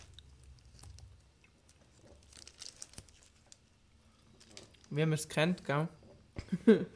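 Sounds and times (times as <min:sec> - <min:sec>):
chewing on a meat snack: 0:00.0 - 0:04.9
speech: 0:04.9 - 0:06.9.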